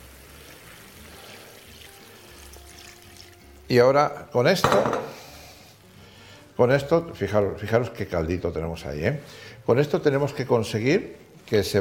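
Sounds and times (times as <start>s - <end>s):
water pouring into a hot pan of food cooked with white wine: 0.0s - 4.5s
faint sizzle: 0.0s - 11.7s
speech: 3.7s - 5.2s, 6.6s - 11.7s.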